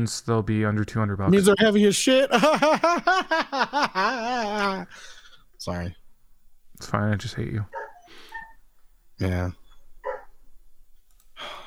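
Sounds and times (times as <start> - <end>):
speech: 0.0 - 6.0, 6.8 - 8.2, 9.2 - 9.6
laughter: 2.1 - 4.9
dog barking: 7.7 - 8.6, 10.0 - 10.4.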